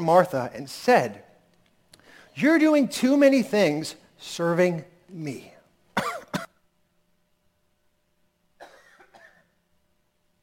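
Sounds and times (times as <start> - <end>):
speech: 0.0 - 1.2, 2.4 - 5.5
person coughing: 6.0 - 6.6, 8.6 - 9.6.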